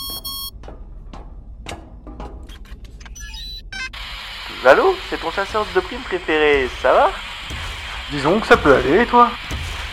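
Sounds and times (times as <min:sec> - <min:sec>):
phone ringing with electronic beeping bursts: 0:00.0 - 0:00.5, 0:03.2 - 0:03.9
speech: 0:04.6 - 0:07.3, 0:08.1 - 0:09.4.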